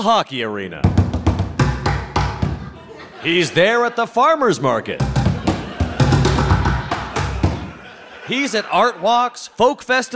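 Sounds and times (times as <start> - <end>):
speech: 0.0 - 1.0, 3.2 - 5.1, 8.3 - 10.1
drumming on upside-down plastic pails: 0.8 - 2.7, 5.0 - 7.8
laughter: 2.3 - 9.6.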